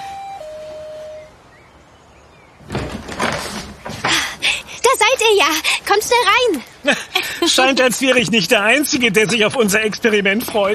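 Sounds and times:
two-tone doorbell chime: 0.0s - 1.3s
door opening with a loud rattling rush: 2.6s - 4.3s
speech: 5.3s - 10.7s.

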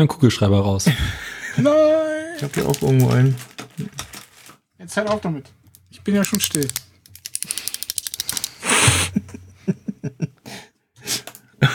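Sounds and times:
speech: 0.0s - 4.0s, 4.8s - 6.8s
laughter: 0.8s - 2.7s, 8.6s - 10.4s
coins rattling and clinking: 2.4s - 4.3s, 5.8s - 8.7s.

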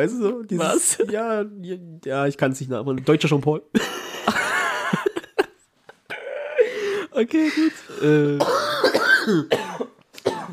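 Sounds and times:
speech: 0.0s - 4.6s, 7.2s - 9.7s
two people coughing harshly: 3.8s - 6.7s, 8.4s - 10.5s
throat-clearing: 8.3s - 10.5s.

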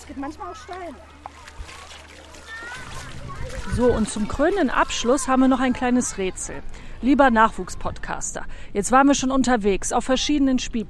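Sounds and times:
water splashing and sloshing from someone wading through shallow water: 0.0s - 7.1s
children's voices chattering faintly: 0.0s - 8.4s
speech: 0.1s - 1.3s, 3.5s - 10.8s.

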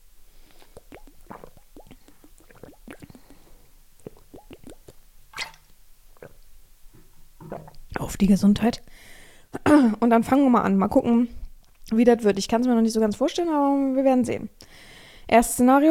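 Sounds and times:
person sipping a drink of water: 0.4s - 8.0s
swallowing clicks: 0.5s - 6.4s, 7.4s - 7.9s
speech: 8.1s - 8.9s, 9.8s - 14.6s, 15.3s - 15.9s.

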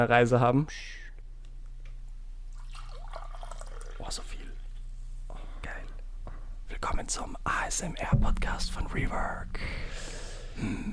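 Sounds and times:
speech: 0.0s - 1.0s, 4.1s - 4.3s, 6.8s - 10.9s
low constant hum: 0.0s - 10.9s
green tea pouring into a cup: 2.5s - 4.6s
soft breathy whispering: 5.3s - 6.0s, 6.7s - 10.9s.

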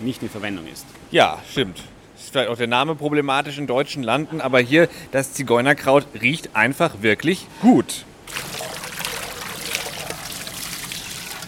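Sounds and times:
speech: 0.0s - 8.1s
water trickling into a dough mixture: 8.3s - 11.4s.

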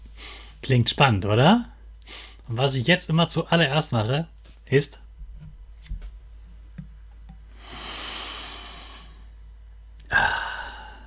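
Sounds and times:
speech: 0.7s - 5.0s
deep inhale through the nose over a cup of tea: 7.5s - 9.4s, 10.1s - 11.0s.

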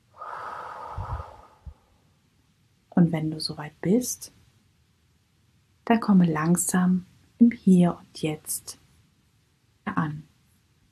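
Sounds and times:
deep breath in and out during a guided meditation: 0.1s - 1.9s
speech: 3.0s - 4.4s, 5.9s - 8.8s.

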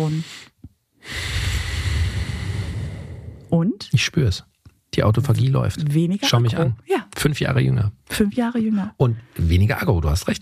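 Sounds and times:
speech: 0.0s - 0.5s, 3.5s - 10.3s
deep breath in and out: 0.1s - 3.5s.

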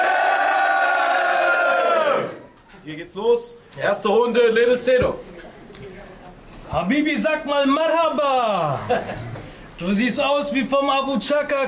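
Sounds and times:
audience cheering and shouting: 0.0s - 2.5s
speech: 3.1s - 5.4s, 6.7s - 11.6s
laughter: 8.6s - 9.5s.

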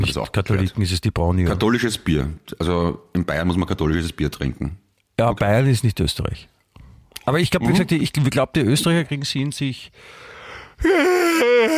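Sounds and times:
speech: 0.0s - 6.5s, 7.2s - 10.2s, 10.8s - 11.7s
person yawning: 10.8s - 11.7s.

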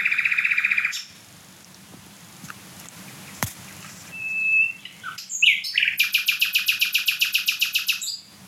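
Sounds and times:
songbird smaller than a blackbird singing loudly: 0.0s - 8.4s.

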